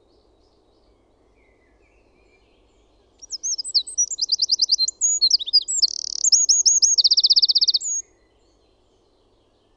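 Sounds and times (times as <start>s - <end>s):
Eurasian wren singing: 3.1s - 8.0s.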